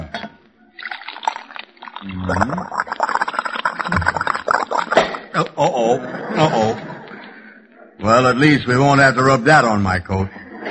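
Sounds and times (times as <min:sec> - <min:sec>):
liquid pouring into a shaving mug: 0:00.8 - 0:05.4
speech: 0:02.0 - 0:02.8, 0:05.4 - 0:06.8, 0:08.0 - 0:10.4
laughter: 0:05.4 - 0:07.5.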